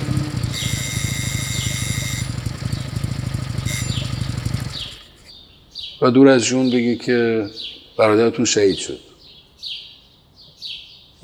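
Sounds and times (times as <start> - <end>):
motorcycle engine idling in a residential alley: 0.0 - 5.4
birds chirping: 0.0 - 11.2
speech: 6.0 - 9.1.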